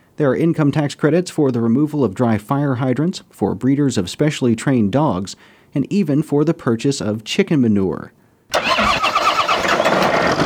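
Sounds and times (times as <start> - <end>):
speech: 0.2 - 8.7
tractor engine on a spinach farm starting: 8.5 - 10.4.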